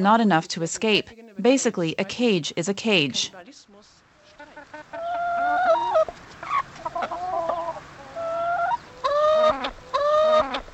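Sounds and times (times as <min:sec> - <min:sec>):
speech: 0:00.0 - 0:03.6
free-range hens clucking in a field next to a barn: 0:04.2 - 0:10.7.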